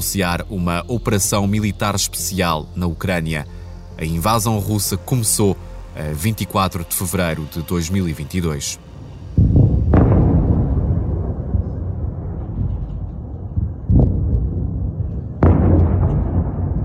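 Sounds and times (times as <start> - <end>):
speech: 0.0 - 8.9
heavy explosions in Ukraine at the start of the Russian invasion: 9.0 - 16.8.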